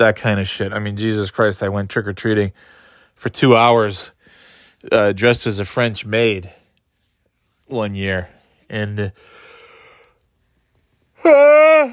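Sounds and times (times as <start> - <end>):
speech: 0.0 - 4.2, 4.8 - 6.6, 7.7 - 9.4, 11.2 - 11.9
person yawning while lying down: 11.2 - 11.9.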